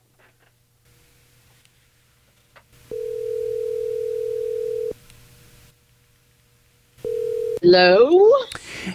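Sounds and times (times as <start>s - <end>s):
telephone dial tone: 2.9s - 5.0s, 7.0s - 7.6s
speech: 7.6s - 8.9s.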